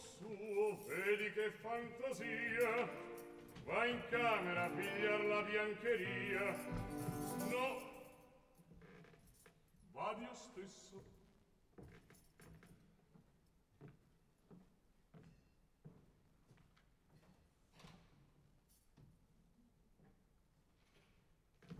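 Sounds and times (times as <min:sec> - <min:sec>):
speech: 0:00.3 - 0:07.8, 0:10.0 - 0:11.1
bunch of keys jangling: 0:00.5 - 0:09.8, 0:11.9 - 0:12.9.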